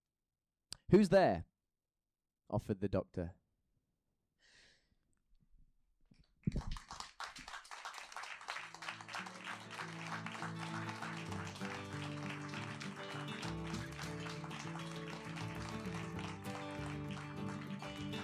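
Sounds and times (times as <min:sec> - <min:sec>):
speech: 0:00.9 - 0:01.5, 0:02.5 - 0:03.4
soft breath: 0:04.4 - 0:05.0
audience applause at an evening performance event: 0:06.5 - 0:18.2
steady music: 0:09.9 - 0:18.2.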